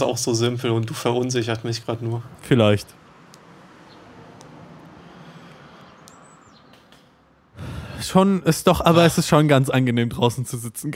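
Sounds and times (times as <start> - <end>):
speech: 0.0 - 3.0, 8.1 - 10.9
traffic noise from passing cars: 0.0 - 10.9
vehicle rushing past: 3.0 - 7.5
bird chirps: 5.7 - 7.2.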